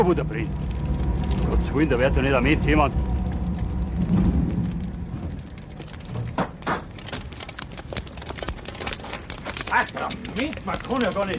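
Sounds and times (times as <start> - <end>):
speech: 0.0 - 0.7, 1.4 - 3.1, 9.8 - 11.3
lone truck engine rumbling along a country road at night: 0.0 - 11.3
sharp clicks and rattles: 0.0 - 11.3.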